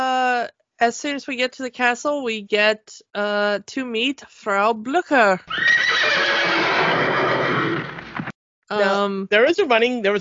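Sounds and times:
speech: 0:00.8 - 0:06.7, 0:08.7 - 0:10.1
horses neighing shrilly in a film scene: 0:05.5 - 0:08.0
person speaking a name: 0:08.7 - 0:10.1.

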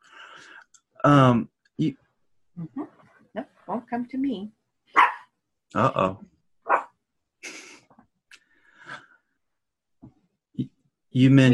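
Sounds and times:
speech: 0:01.0 - 0:02.0, 0:02.6 - 0:04.6, 0:05.7 - 0:06.3, 0:10.6 - 0:11.5
small excited dog barking: 0:04.9 - 0:05.3, 0:06.7 - 0:07.0.

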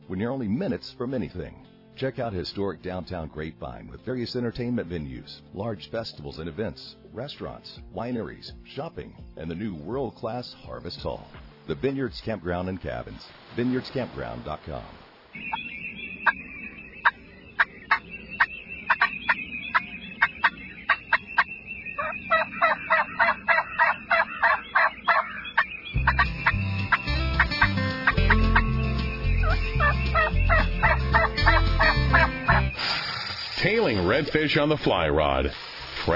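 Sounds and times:
speech: 0:00.1 - 0:15.6, 0:34.3 - 0:36.1
wild turkeys gobbling: 0:15.4 - 0:33.0.

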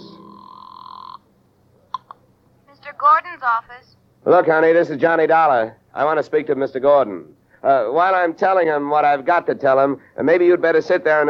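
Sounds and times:
telephone ringing for a phone call to the home office: 0:00.0 - 0:01.2
speech: 0:03.0 - 0:11.2.

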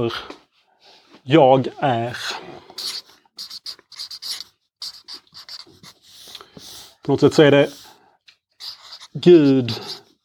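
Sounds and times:
speech: 0:00.0 - 0:00.4, 0:01.3 - 0:02.9, 0:07.1 - 0:07.8, 0:09.2 - 0:10.0
pen or marker strokes scratching and squeaking while drawing a diagram: 0:02.7 - 0:07.9, 0:08.6 - 0:10.2.

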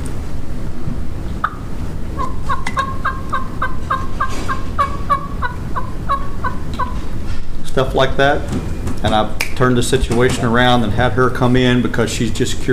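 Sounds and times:
constant low rumbling background: 0:00.0 - 0:12.7
soft hen turkey yelps: 0:01.4 - 0:07.5
speech: 0:07.8 - 0:12.7.

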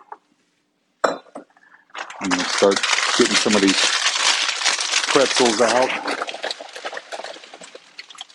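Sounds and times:
dishes clinking as a bowl is taken out while cooking: 0:01.0 - 0:01.6
speech: 0:02.2 - 0:04.1, 0:05.2 - 0:06.4.

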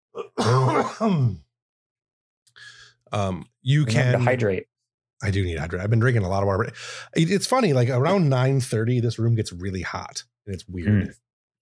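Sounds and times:
throat clearing: 0:00.2 - 0:01.5
speech: 0:00.8 - 0:01.4, 0:02.6 - 0:11.2.

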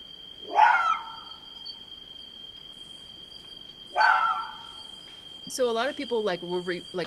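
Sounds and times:
steady high insect-like whine: 0:00.0 - 0:07.0
fox giving night-time screaming bark: 0:00.4 - 0:01.3, 0:04.0 - 0:04.8
speech: 0:05.5 - 0:07.0.

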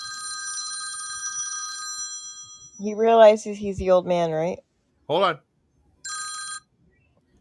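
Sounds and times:
electronic telephone ringing: 0:00.0 - 0:02.9, 0:06.1 - 0:06.7
speech: 0:02.8 - 0:05.5.

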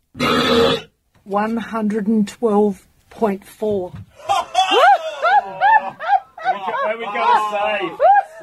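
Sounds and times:
loud human belch: 0:00.2 - 0:00.9
speech: 0:00.7 - 0:04.8, 0:06.9 - 0:08.4
laughter-like vocal sounds: 0:04.2 - 0:08.4.

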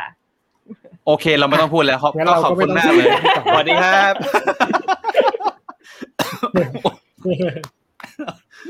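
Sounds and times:
speech: 0:00.0 - 0:05.3, 0:05.9 - 0:08.6
laughter: 0:02.5 - 0:08.6
person coughing after choking on saliva: 0:06.0 - 0:07.6.

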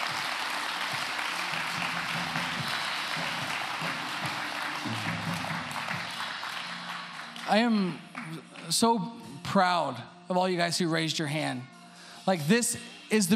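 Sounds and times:
large crowd applauding: 0:00.0 - 0:08.8
speech: 0:07.5 - 0:08.0, 0:08.7 - 0:13.3.

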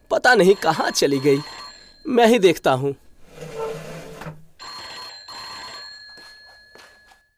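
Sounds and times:
speech: 0:00.2 - 0:03.0
telephone bell ringing with a bright metallic jangle: 0:00.3 - 0:02.3, 0:04.6 - 0:07.3.

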